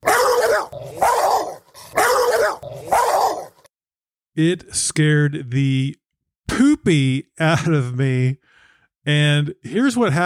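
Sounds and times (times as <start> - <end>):
huge dog barking from the back seat of a passing Jeep: 0.0 - 3.7
speech: 4.4 - 10.2.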